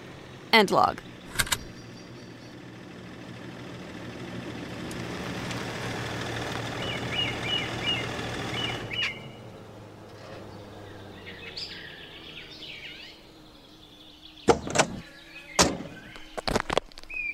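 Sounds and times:
car engine laboring with low uneven rumble: 0.0s - 17.2s
speech: 0.5s - 1.1s
sharp click: 1.3s - 1.7s.

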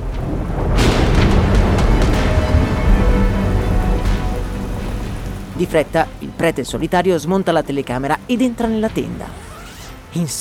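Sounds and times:
wind straining a tent's guy lines: 0.0s - 8.1s
thunder rumbling in the mountains: 0.0s - 9.4s
rain hissing outside a tent: 0.0s - 10.3s
speech: 5.6s - 9.4s, 10.1s - 10.3s.

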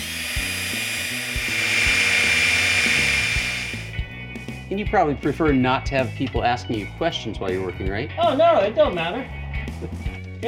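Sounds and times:
power drill boring into the hard metal of a safe in a scrapyard: 0.0s - 4.0s
speech: 4.7s - 10.1s.

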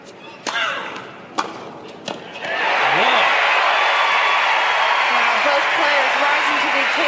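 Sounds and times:
tennis racket thwacks: 0.4s - 2.4s
large tennis crowd cheering and applauding: 2.4s - 7.0s
people shouting in a tennis crowd: 2.5s - 7.0s.

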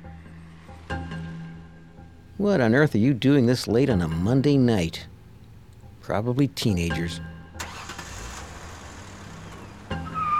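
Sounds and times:
speech: 2.4s - 5.1s, 6.1s - 7.3s
car engine rumbling as the vehicle drives along: 5.1s - 10.3s.

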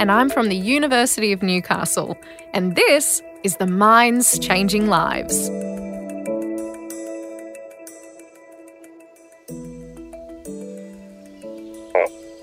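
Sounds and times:
speech: 0.0s - 5.9s
frogs calling in a chorus: 10.8s - 12.4s
pulsed frog croaks: 11.8s - 12.4s.

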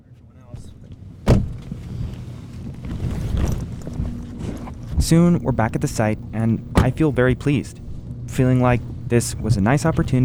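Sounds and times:
low car engine rumble heard from the back seat: 3.3s - 10.2s
faint voices: 5.0s - 10.2s
speech: 5.0s - 10.2s.

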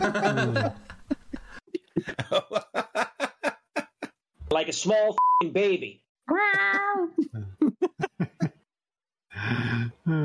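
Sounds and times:
speech: 0.0s - 0.9s, 4.7s - 7.4s
laughter: 0.0s - 4.2s, 6.8s - 8.7s
cat meowing and yowling: 6.3s - 7.1s.

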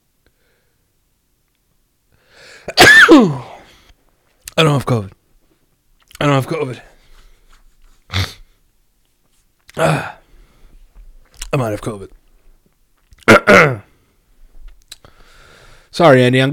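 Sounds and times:
person sneezing: 2.6s - 3.8s, 8.1s - 8.5s, 9.8s - 10.2s
speech: 2.7s - 3.5s, 4.6s - 5.2s, 6.2s - 6.9s, 9.8s - 10.1s, 11.6s - 12.2s, 13.5s - 13.9s, 16.0s - 16.5s
quiet rustling: 5.1s - 9.7s, 10.5s - 13.2s, 14.2s - 15.0s.

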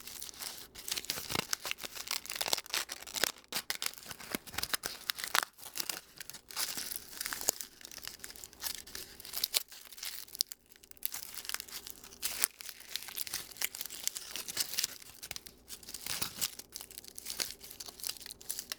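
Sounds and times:
aluminum foil crinkling and crumpling: 0.0s - 18.7s.

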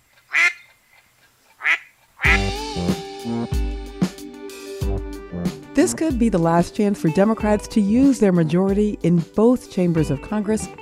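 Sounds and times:
duck quacking: 0.3s - 0.8s, 1.6s - 2.6s
bouncy music with rhythmic hits: 2.3s - 10.8s
speech: 5.8s - 10.8s.

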